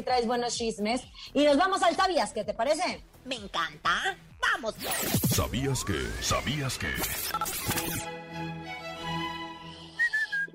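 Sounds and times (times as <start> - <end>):
speech: 0.0 - 8.5
noisy burst: 4.8 - 8.0
person whistling: 9.7 - 10.5.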